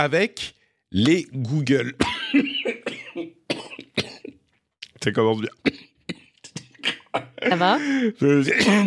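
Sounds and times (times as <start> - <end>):
speech: 0.0 - 3.4, 5.0 - 5.8, 7.1 - 8.8
harsh raspy coughing fit: 1.9 - 4.4, 5.6 - 8.8.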